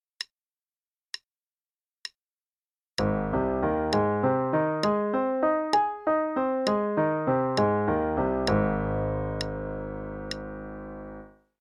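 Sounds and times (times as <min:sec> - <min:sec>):
arpeggios in A-flat major: 0:03.0 - 0:11.4.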